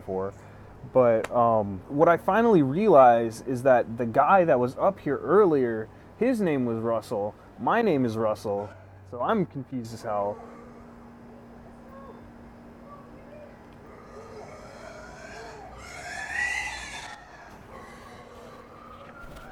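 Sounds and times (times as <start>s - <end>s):
speech: 0.1s - 10.5s
pet pig squealing: 14.0s - 18.4s.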